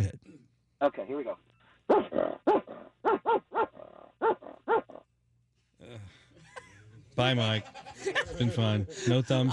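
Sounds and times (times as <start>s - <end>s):
speech: 0.8s - 3.7s, 7.2s - 9.5s
person imitating dog barks over the phone: 1.9s - 5.0s
laughter: 6.3s - 9.5s.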